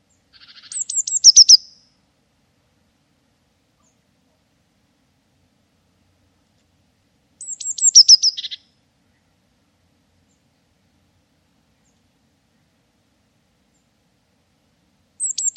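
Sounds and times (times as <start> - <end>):
bird giving faint ticks: 0.4 - 1.7, 7.4 - 8.6, 15.2 - 15.5.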